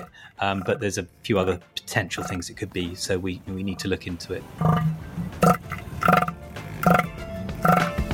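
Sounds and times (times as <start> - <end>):
seals grunting: 0.0 - 0.8, 2.2 - 2.4, 4.6 - 8.0
speech: 0.3 - 5.6.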